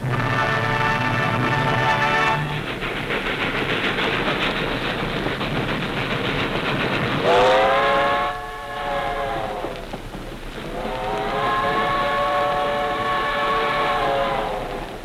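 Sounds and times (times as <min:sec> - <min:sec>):
train whistle blasts: 0:00.0 - 0:02.6, 0:07.2 - 0:09.8, 0:10.7 - 0:14.8
train rumbling past: 0:00.0 - 0:15.0.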